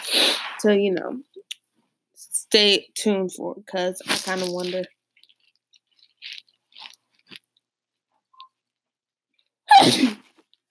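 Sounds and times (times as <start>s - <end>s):
quick sharp breaths or sniffs: 0.0s - 0.6s
speech: 0.6s - 1.3s, 2.5s - 5.0s, 9.8s - 10.2s
sneeze: 9.7s - 10.3s.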